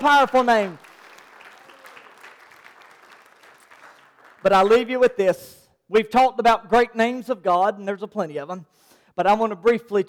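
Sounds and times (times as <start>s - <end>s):
speech: 0.0s - 0.8s, 4.4s - 10.0s
audience clapping hands in steady sustained applause: 0.0s - 4.8s.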